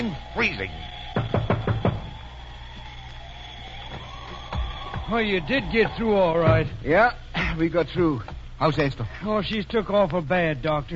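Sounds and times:
speech: 0.0 - 1.3, 5.1 - 10.9
faint noise: 0.0 - 10.9
knocking on a wooden door: 1.2 - 2.0.

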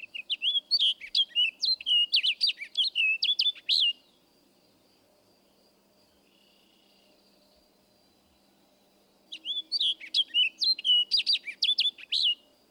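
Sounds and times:
orchard oriole warbling song with down-slurred ending: 0.0 - 4.2, 9.3 - 12.4.

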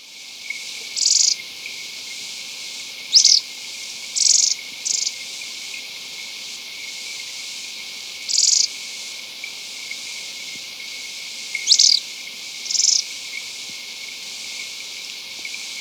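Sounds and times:
faint background hiss: 0.0 - 15.7
agile tit-tyrant calling in Ecuador: 3.2 - 3.4, 11.7 - 12.0, 12.7 - 13.0.

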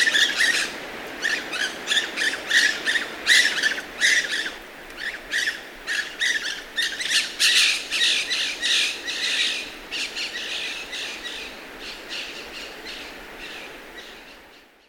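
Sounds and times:
white-breasted parakeets screeching in Ecuador: 0.0 - 9.6.

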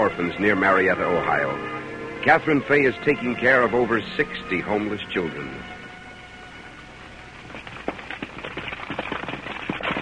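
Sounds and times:
speech: 0.0 - 5.8
horse hooves clip-clopping: 6.6 - 10.0
horse-drawn wagon rolling with a noisy rumble: 7.0 - 10.0.

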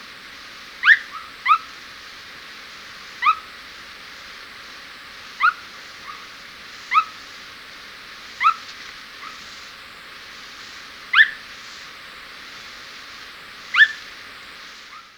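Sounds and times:
quiet hiss: 0.0 - 15.1
Unicolored Tapaculo sharp upward-sweeping calls in Ecuador: 0.8 - 1.8, 3.0 - 3.6, 5.2 - 15.1.

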